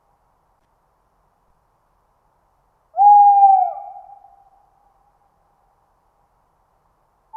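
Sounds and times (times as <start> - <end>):
tawny owl giving a long smooth mid-pitched hoot: 3.0 - 4.5.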